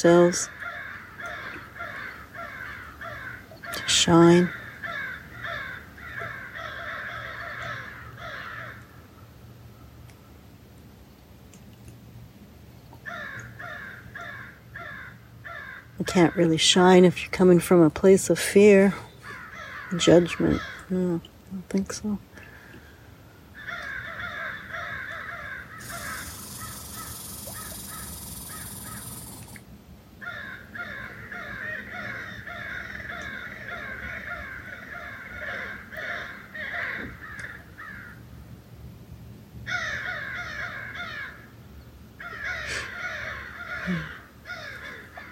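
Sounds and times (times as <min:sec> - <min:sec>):
speech: 0:00.0 - 0:00.6, 0:03.8 - 0:04.6, 0:16.0 - 0:19.1, 0:19.9 - 0:22.3
flock of crows cawing in agitated commotion: 0:00.4 - 0:03.8, 0:04.5 - 0:09.0, 0:13.0 - 0:16.0, 0:19.2 - 0:20.9, 0:23.6 - 0:29.6, 0:30.2 - 0:38.2, 0:39.7 - 0:41.5, 0:42.2 - 0:45.3.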